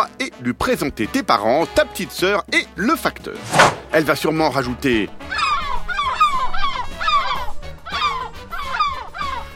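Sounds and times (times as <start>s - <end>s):
speech: 0.0s - 5.6s
seagull calling in reply with harsh yelping cries: 5.3s - 9.5s.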